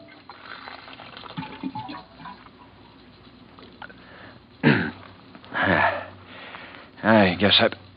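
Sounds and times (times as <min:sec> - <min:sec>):
water from an office water cooler pouring into a cup: 0:00.0 - 0:04.0
speech: 0:07.0 - 0:07.8.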